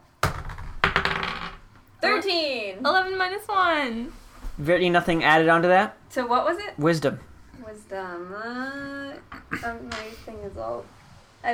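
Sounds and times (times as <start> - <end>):
dice rolled for a wisdom check clattering onto a hard table: 0.2 - 1.6
speech: 2.2 - 11.5.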